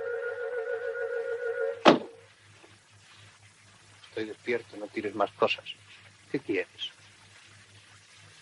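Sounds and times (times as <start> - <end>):
low electrical hum: 0.0 - 8.4
rustle: 0.7 - 8.4
book dropping onto the floor: 1.8 - 2.2
speech: 4.2 - 7.0.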